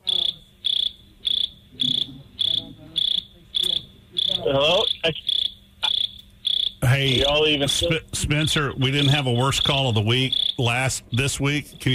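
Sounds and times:
crickets chirping: 0.0s - 11.9s
speech: 4.4s - 5.3s, 7.0s - 11.9s.

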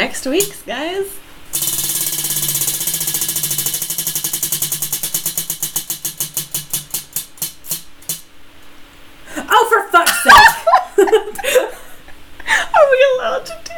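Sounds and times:
prize wheel spinning with its pointer ticking: 0.0s - 0.6s, 1.5s - 8.3s
speech: 0.0s - 2.0s
laughter: 10.0s - 12.6s.

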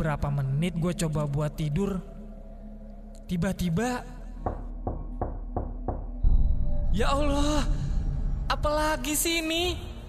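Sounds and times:
speech: 0.0s - 2.2s, 3.3s - 4.2s, 6.9s - 7.8s, 8.5s - 9.9s
knocking on a bedroom door: 4.4s - 6.2s.

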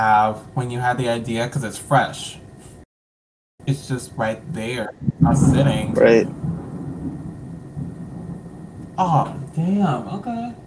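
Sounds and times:
speech: 0.0s - 2.4s, 3.6s - 6.5s, 9.0s - 10.6s
rolling thunder from a storm: 4.3s - 10.6s.

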